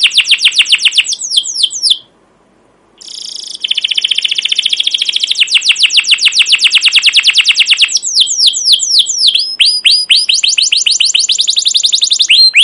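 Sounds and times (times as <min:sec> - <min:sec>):
captive canary singing a long rapid trill: 0:00.0 - 0:02.1, 0:03.0 - 0:12.6.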